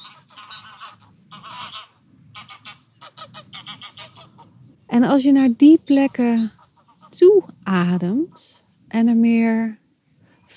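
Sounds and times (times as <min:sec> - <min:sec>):
flock of geese honking flying overhead: 0:00.0 - 0:04.8, 0:05.4 - 0:08.6
speech: 0:04.9 - 0:06.6, 0:07.2 - 0:09.8.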